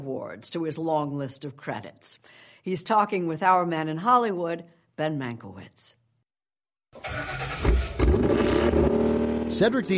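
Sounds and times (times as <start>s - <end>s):
speech: 0.0s - 6.0s, 6.9s - 8.9s, 9.5s - 9.9s
car engine from a private collection starting and revving: 7.0s - 9.9s.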